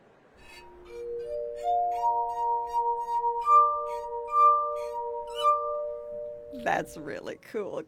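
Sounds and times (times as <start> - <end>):
fingers rubbing the rims of tuned glasses: 0.4 - 6.3
verophone glass instrument playing sustained glassy tones: 0.4 - 7.2
speech: 6.6 - 7.8.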